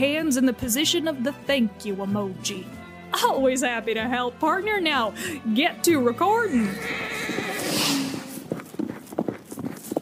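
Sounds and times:
speech: 0.0 - 7.2
horse hooves clopping as it gallops off at speed: 6.1 - 10.0
horse neighing: 6.4 - 8.6.

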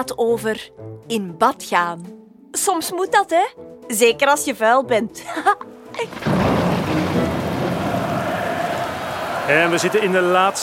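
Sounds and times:
speech: 0.0 - 6.6, 9.5 - 10.6
heavy rain falling: 6.1 - 10.6
laughter: 7.2 - 10.6.

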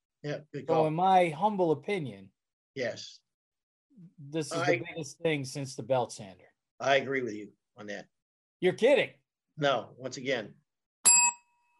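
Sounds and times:
speech: 0.2 - 3.2, 4.0 - 10.6
two small bells struck together: 11.0 - 11.7.

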